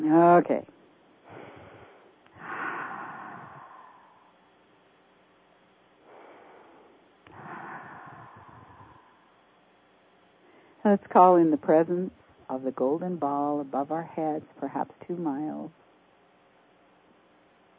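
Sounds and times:
speech: 0:00.1 - 0:00.7, 0:10.8 - 0:15.8
deep breaths from someone out of breath: 0:01.2 - 0:04.8, 0:06.0 - 0:09.7, 0:10.3 - 0:10.8.

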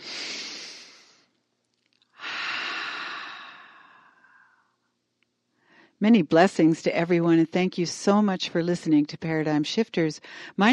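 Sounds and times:
deep breath in and out during a guided breathing exercise: 0:00.0 - 0:01.3, 0:02.1 - 0:04.8, 0:05.6 - 0:06.0, 0:10.2 - 0:10.6
speech: 0:06.0 - 0:10.7.

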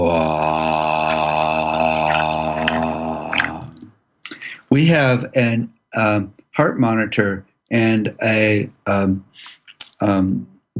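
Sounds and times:
sustained low vocal tone on a slow out-breath during a breathing exercise: 0:00.0 - 0:10.7
speech: 0:04.9 - 0:10.7.

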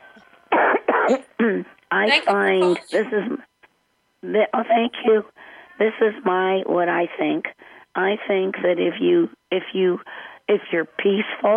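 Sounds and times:
person coughing: 0:00.5 - 0:01.6
person clearing throat: 0:00.5 - 0:01.7
speech: 0:01.1 - 0:03.5, 0:04.2 - 0:11.5.

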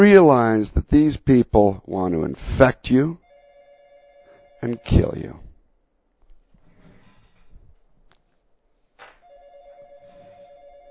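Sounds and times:
speech: 0:00.0 - 0:03.2, 0:04.6 - 0:05.4
telephone ringing with an electronic warble: 0:03.2 - 0:05.3, 0:09.2 - 0:10.8.

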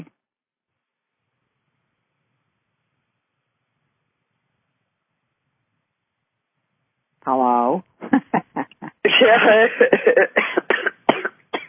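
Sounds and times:
laughter: 0:08.0 - 0:10.7
raspy coughs: 0:09.1 - 0:11.6
speech: 0:09.3 - 0:10.5.

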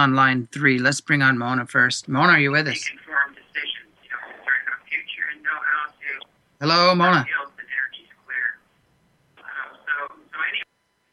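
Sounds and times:
speech: 0:00.0 - 0:03.0, 0:06.6 - 0:07.4
thin radio audio over a telephone line: 0:01.4 - 0:08.8, 0:09.4 - 0:10.7.

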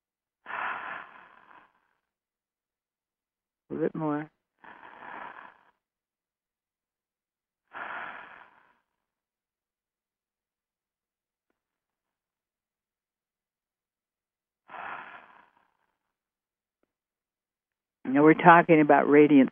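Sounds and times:
deep slow breaths from a guided breathing exercise: 0:00.4 - 0:02.1, 0:04.6 - 0:05.8, 0:07.7 - 0:09.2, 0:14.7 - 0:16.2
speech: 0:03.8 - 0:04.4, 0:18.1 - 0:19.5.

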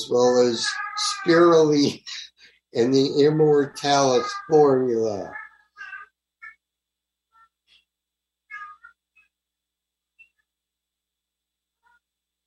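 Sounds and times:
cat meowing: 0:00.0 - 0:02.2, 0:02.8 - 0:06.6, 0:08.5 - 0:09.0
speech: 0:00.0 - 0:05.4.

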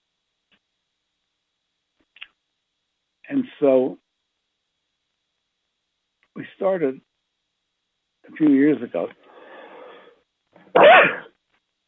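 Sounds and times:
speech: 0:03.3 - 0:04.0, 0:06.6 - 0:07.1, 0:08.3 - 0:09.2
quick intake of breath: 0:09.2 - 0:10.2
sneeze: 0:10.7 - 0:11.4.

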